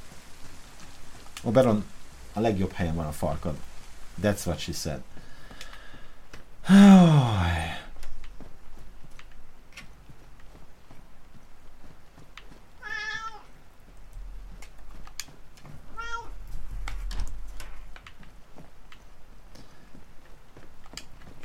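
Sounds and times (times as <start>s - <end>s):
speech: 1.4s - 5.2s, 6.7s - 7.7s
cat meowing: 12.8s - 13.5s, 15.9s - 16.4s.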